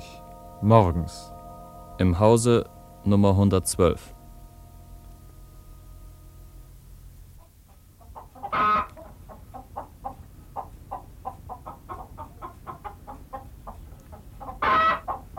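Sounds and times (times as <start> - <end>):
speech: 0.6 - 1.3, 2.0 - 4.2
hen clucking after laying an egg: 7.4 - 15.3
hen cackling squawks after laying an egg: 8.1 - 13.4, 14.4 - 15.3.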